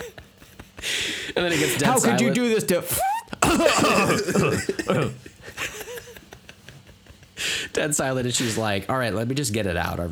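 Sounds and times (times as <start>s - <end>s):
laughter: 0.0s - 8.6s
speech: 1.3s - 5.6s, 7.8s - 10.1s
woman making deliberate coughs to cover a fart: 1.5s - 2.4s, 3.0s - 5.2s.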